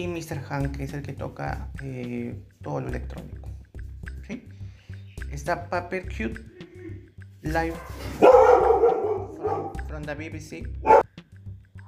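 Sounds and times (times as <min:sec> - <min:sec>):
speech: 0:00.0 - 0:03.6, 0:04.3 - 0:04.6, 0:05.3 - 0:06.6, 0:07.4 - 0:11.0
dogs barking: 0:07.7 - 0:09.9, 0:10.8 - 0:11.1.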